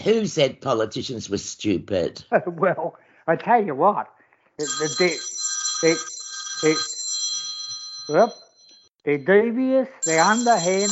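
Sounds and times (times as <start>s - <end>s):
speech: 0.0s - 7.0s, 8.1s - 8.4s, 9.0s - 10.9s
telephone ringing with a bright sustained electronic tone: 4.6s - 8.9s, 10.0s - 10.9s.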